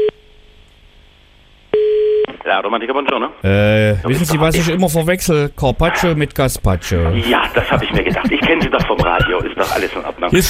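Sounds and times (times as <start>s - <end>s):
telephone line tone beeps during a redial: 1.8s - 2.3s
speech: 2.5s - 10.4s
laughter: 7.0s - 10.4s.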